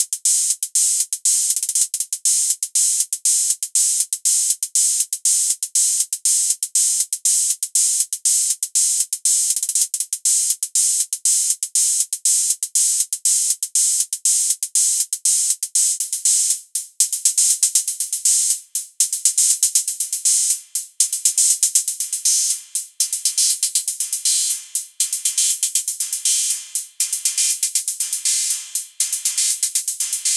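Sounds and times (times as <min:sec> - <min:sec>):
drum machine hi-hats: 0:00.0 - 0:30.3.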